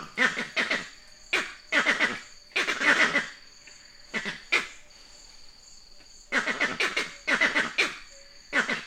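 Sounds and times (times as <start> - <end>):
vervet monkey uttering throaty pulsed chattering calls: 0.0 - 3.4, 6.3 - 8.8
thin high insect hum: 0.0 - 8.8.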